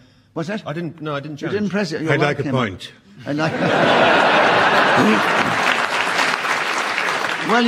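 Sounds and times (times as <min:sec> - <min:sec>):
speech: 0:00.4 - 0:05.5, 0:07.5 - 0:07.6
studio audience chuckling: 0:03.4 - 0:06.4
studio audience applause: 0:03.8 - 0:07.6.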